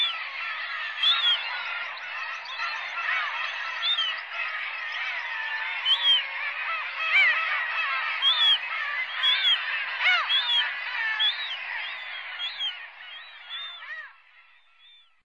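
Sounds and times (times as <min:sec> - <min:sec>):
black-tailed gulls calling in a dense chorus on the Sakhalin and Kuril Islands: 0:00.0 - 0:15.2.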